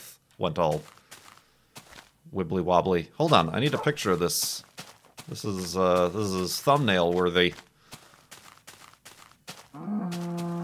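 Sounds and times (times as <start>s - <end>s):
speech: 0.4s - 1.0s, 2.3s - 7.7s
cow mooing: 9.7s - 10.6s.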